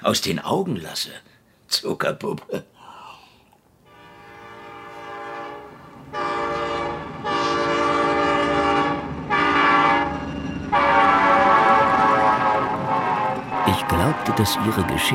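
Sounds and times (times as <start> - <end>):
speech: 0.0 - 2.7, 14.3 - 15.1
passenger train horn blasts: 3.8 - 15.1.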